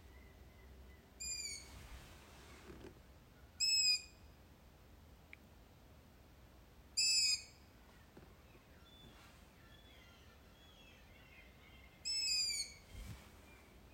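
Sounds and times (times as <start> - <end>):
low background hiss: 0.0 - 13.9
bird giving loud nasal screeching calls: 1.2 - 1.8, 7.0 - 7.5, 12.0 - 12.8
faint click: 5.3 - 5.5.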